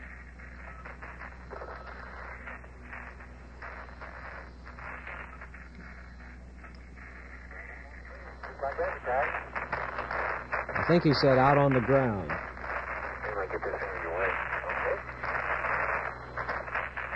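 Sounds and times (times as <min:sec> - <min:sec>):
scratchy narrowband radio transmission static and hiss: 0:00.0 - 0:17.1
garbled voice over radio transmission: 0:07.5 - 0:09.5, 0:10.6 - 0:12.5, 0:13.1 - 0:15.1
speech: 0:10.9 - 0:12.4.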